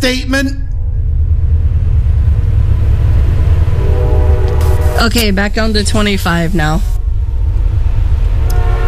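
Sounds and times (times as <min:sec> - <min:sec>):
speech: 0:00.0 - 0:00.6, 0:05.0 - 0:06.9
distant train rumbling: 0:00.0 - 0:08.8
distant train horn: 0:03.6 - 0:05.5, 0:08.3 - 0:08.8.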